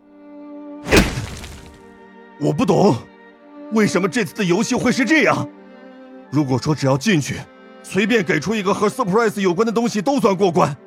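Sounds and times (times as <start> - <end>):
fist punching an alley wall: 0.9 - 1.8
speech: 2.4 - 3.1, 3.7 - 5.6, 6.3 - 10.8.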